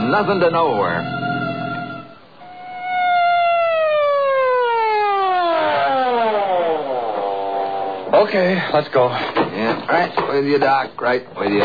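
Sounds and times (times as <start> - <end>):
emergency vehicle siren wailing: 0.0 - 8.1
speech: 0.1 - 1.2, 8.1 - 11.6.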